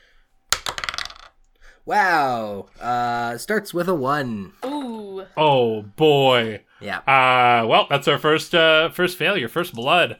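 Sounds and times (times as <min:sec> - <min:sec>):
single die rolled onto a hard tabletop: 0:00.5 - 0:01.4
speech: 0:01.8 - 0:10.1.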